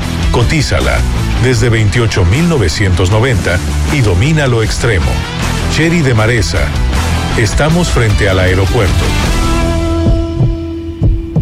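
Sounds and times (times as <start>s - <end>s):
speech: 0.4s - 9.3s
heartbeat thumps in a lub-dub rhythm: 9.5s - 11.4s.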